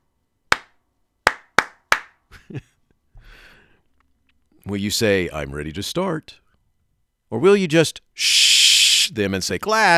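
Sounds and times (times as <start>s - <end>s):
rhythmic attention-getting hand clap pattern: 0.5s - 2.2s
speech: 2.5s - 2.7s, 4.6s - 6.4s, 7.3s - 9.9s.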